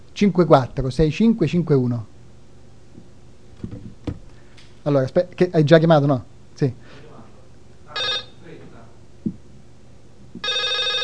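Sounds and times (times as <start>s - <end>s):
speech: 0.2s - 2.1s, 4.8s - 7.0s
soft thump: 3.6s - 4.3s
telephone ringing in electronic trilling bursts during a live radio programme: 7.9s - 8.4s, 10.4s - 11.0s.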